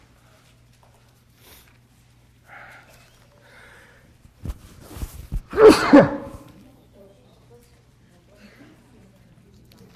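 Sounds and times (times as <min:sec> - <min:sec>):
short catching breaths: 0:02.5 - 0:04.2
person sneezing: 0:05.5 - 0:06.5.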